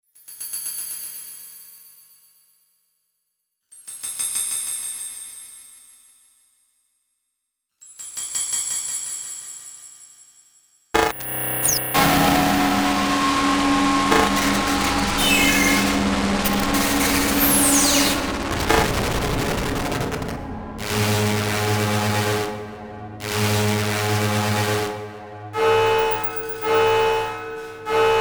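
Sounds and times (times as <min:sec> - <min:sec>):
electrical electronic whoosh: 0:11.0 - 0:27.9.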